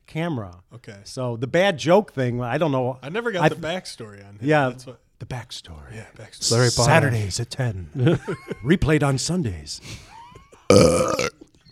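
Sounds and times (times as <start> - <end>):
speech: 0.1 - 10.1, 10.7 - 11.3
person belching loudly: 10.7 - 11.4.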